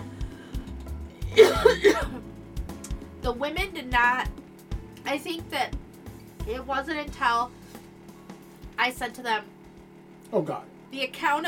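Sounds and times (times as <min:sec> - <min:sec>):
low steady hum: 0:00.0 - 0:11.4
person coughing: 0:01.3 - 0:02.2
speech: 0:03.2 - 0:04.4, 0:05.1 - 0:05.8, 0:06.4 - 0:07.6, 0:08.8 - 0:09.5, 0:10.3 - 0:11.4.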